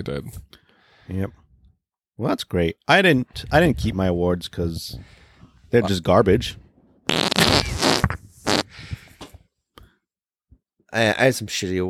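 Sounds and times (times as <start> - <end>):
speech: 0.0 - 0.5, 1.1 - 1.4, 2.2 - 7.3, 10.9 - 11.8
fart: 7.1 - 8.7.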